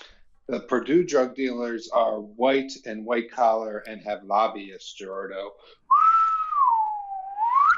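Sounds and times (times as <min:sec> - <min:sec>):
speech: 0:00.5 - 0:05.8
person whistling: 0:05.9 - 0:07.7.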